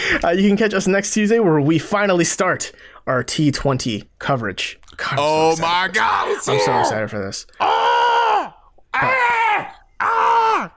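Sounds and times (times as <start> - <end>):
speech: 0.1 - 8.0
person screaming excitedly: 6.1 - 7.0, 7.6 - 10.7.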